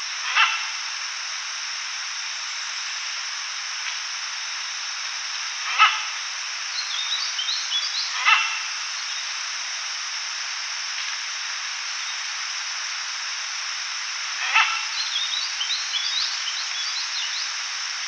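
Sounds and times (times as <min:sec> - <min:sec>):
steady hiss: 0:00.0 - 0:18.0
knobbed hornbill giving short harsh barking calls: 0:00.2 - 0:00.8, 0:05.6 - 0:06.3, 0:07.4 - 0:09.0, 0:14.2 - 0:17.3.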